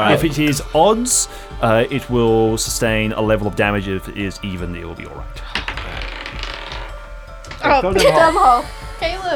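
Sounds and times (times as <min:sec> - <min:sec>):
speech: 0:00.0 - 0:05.6, 0:07.7 - 0:09.3
laughter: 0:00.0 - 0:06.8, 0:07.5 - 0:09.3
dice rolled across a surface rattling and clattering: 0:05.5 - 0:06.9.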